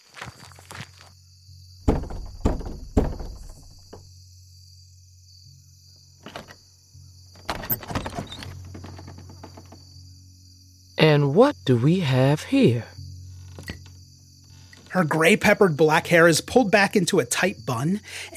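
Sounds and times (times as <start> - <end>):
steady hum: 0.1 - 18.3
rifle butt knocking on wooden door: 1.8 - 4.1
speech: 11.2 - 12.9, 15.0 - 18.3.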